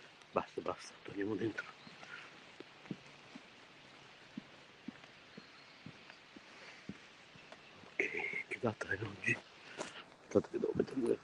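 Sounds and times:
soft rain falling outdoors: 0:00.0 - 0:11.2
speech: 0:00.4 - 0:01.8, 0:08.6 - 0:09.5, 0:10.3 - 0:11.2
footsteps of someone walking through the rain: 0:01.7 - 0:08.1, 0:08.8 - 0:11.2.

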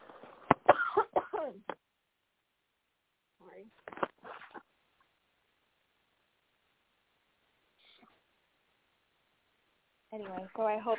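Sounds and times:
person in a harsh coughing fit: 0:00.7 - 0:01.6
speech: 0:10.2 - 0:10.9.

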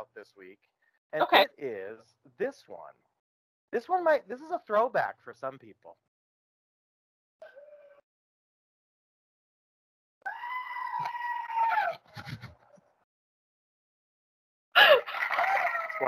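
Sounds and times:
speech: 0:00.1 - 0:03.1, 0:03.7 - 0:06.1
goat bleating and screaming: 0:10.3 - 0:12.0, 0:14.8 - 0:16.0.

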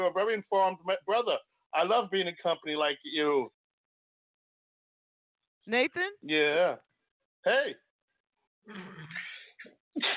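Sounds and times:
speech: 0:00.0 - 0:03.6, 0:05.6 - 0:07.8, 0:08.6 - 0:09.2, 0:10.0 - 0:10.1
man sneezing loudly: 0:09.2 - 0:10.1.

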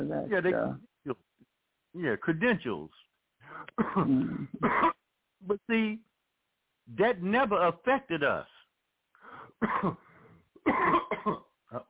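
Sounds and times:
speech: 0:00.0 - 0:01.3, 0:02.0 - 0:06.1, 0:06.9 - 0:08.5, 0:09.2 - 0:11.8
man clearing throat: 0:03.7 - 0:05.0, 0:09.6 - 0:10.0, 0:10.6 - 0:11.8
man coughing: 0:03.8 - 0:05.0, 0:09.6 - 0:10.0, 0:10.6 - 0:11.6.

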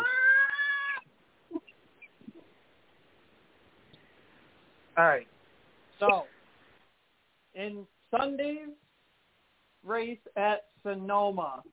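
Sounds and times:
cat meowing: 0:00.0 - 0:01.1
speech: 0:05.0 - 0:05.4, 0:06.0 - 0:06.3, 0:07.6 - 0:08.8, 0:09.8 - 0:11.7.

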